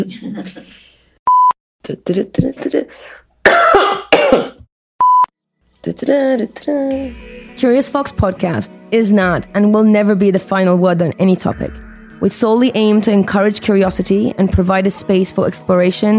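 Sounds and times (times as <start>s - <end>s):
speech: 0.0s - 0.9s, 1.9s - 4.6s, 5.8s - 16.1s
harsh coughing: 3.5s - 4.7s
throat clearing: 3.5s - 4.7s.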